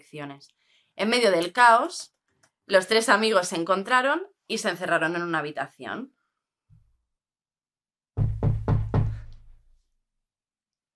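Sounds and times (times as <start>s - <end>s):
speech: 0.0s - 6.2s
heavy insistent knocking on a door: 8.2s - 9.5s.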